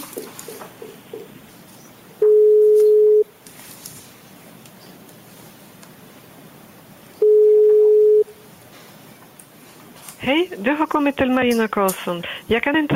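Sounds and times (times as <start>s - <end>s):
telephone ringback tone while a call is placed: 2.2s - 3.3s, 7.2s - 8.3s
speech: 10.3s - 12.9s.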